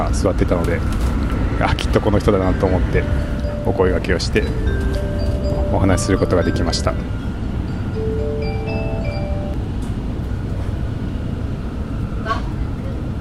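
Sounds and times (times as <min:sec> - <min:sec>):
onboard train announcement voice: 0:00.0 - 0:00.8, 0:01.4 - 0:09.6
rumble of a moving train carriage: 0:00.0 - 0:13.1
speech: 0:00.1 - 0:04.8, 0:05.7 - 0:07.3
short melodic chime inside a moving train: 0:02.2 - 0:09.6.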